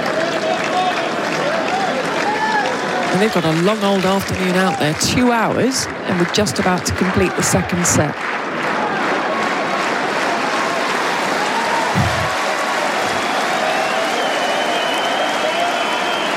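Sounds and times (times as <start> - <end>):
large tennis crowd cheering and applauding: 0.0 - 16.3
speech: 3.1 - 8.4
low thumps: 12.0 - 12.4.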